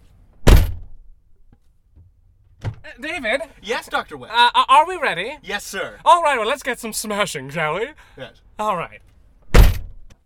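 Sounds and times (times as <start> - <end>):
car door closing heard from inside the car: 0.4 - 1.1, 9.5 - 10.1
speech: 2.9 - 9.1.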